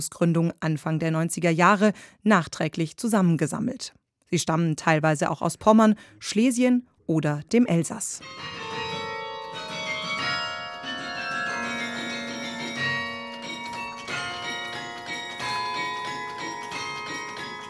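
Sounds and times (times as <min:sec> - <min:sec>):
speech: 0:00.0 - 0:08.8
several historic church bells ringing in a peal: 0:08.2 - 0:17.6.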